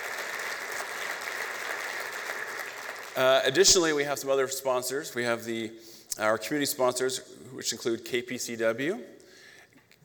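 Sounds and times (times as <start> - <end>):
crowd applauding for an event's presenting sponsors: 0.0 - 3.6
speech: 3.2 - 9.2.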